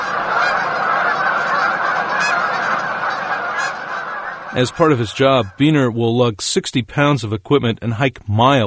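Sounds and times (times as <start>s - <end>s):
huge flock of geese honking: 0.0s - 6.3s
speech: 4.6s - 8.6s.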